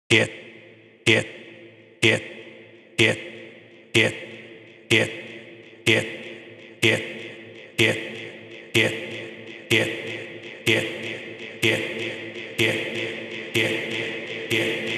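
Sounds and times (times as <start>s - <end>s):
vocal loop: 0.1s - 0.4s, 1.1s - 1.4s, 2.0s - 2.3s, 3.0s - 3.3s, 4.0s - 4.3s, 4.9s - 5.3s, 5.9s - 6.2s, 6.8s - 14.9s.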